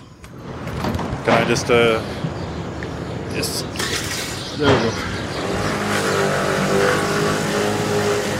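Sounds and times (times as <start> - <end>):
road and wind noise: 0.0 - 8.3
speech: 1.2 - 2.2, 3.4 - 5.2
small scooter engine droning and revving while riding: 5.0 - 8.3.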